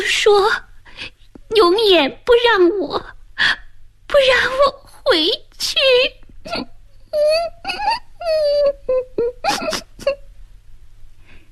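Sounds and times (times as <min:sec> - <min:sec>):
speech: 0:00.1 - 0:10.2
child crying with sorrowful low wailing: 0:06.5 - 0:10.2.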